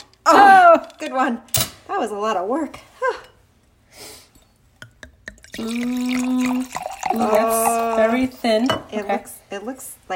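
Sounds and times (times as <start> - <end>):
speech: 1.0 - 3.3, 5.6 - 10.1
wine pouring into a glass: 5.2 - 9.0.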